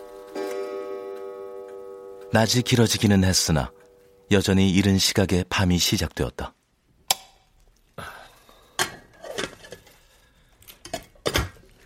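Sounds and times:
speech: 2.3s - 6.6s
metal pot lids and rice cooker being opened in a kitchen: 8.8s - 9.9s.

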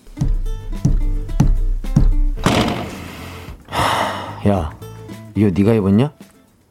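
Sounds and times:
angry heavy stomping footsteps: 0.2s - 3.8s
loud crashing burst: 2.4s - 3.5s
speech: 4.4s - 4.8s, 5.4s - 6.3s.

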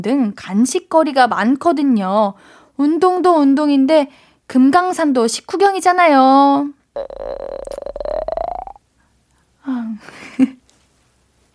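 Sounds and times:
speech: 0.0s - 8.1s, 9.6s - 10.6s
cartoonish stomach-growl sound effect: 7.0s - 8.8s.

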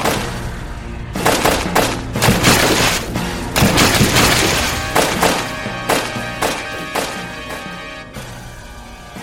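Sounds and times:
naval cannon fire in battle barrage: 1.3s - 6.2s.

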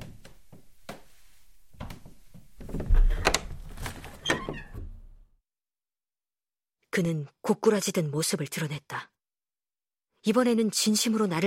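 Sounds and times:
old man's footsteps walking toward the room door: 0.0s - 4.3s
old man pulling wooden shutters shut: 1.7s - 5.2s
speech: 7.0s - 9.1s, 10.2s - 11.4s.

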